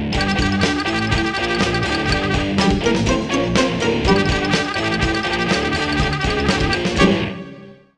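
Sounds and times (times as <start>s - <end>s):
baritone saxophone: 0.2s - 2.9s, 4.1s - 7.1s.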